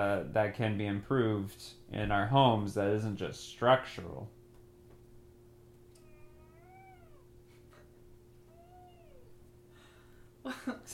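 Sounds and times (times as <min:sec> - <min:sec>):
speech: 0:00.0 - 0:04.4, 0:10.5 - 0:10.9
steady low hum: 0:00.0 - 0:10.9
cat in a bag meowing: 0:06.0 - 0:07.4, 0:08.4 - 0:09.5.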